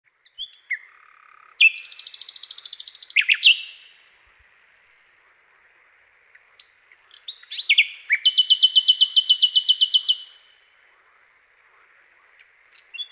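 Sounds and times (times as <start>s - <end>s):
common nightingale buzzy rattle of repeated notes: 1.6s - 3.7s, 7.9s - 10.3s.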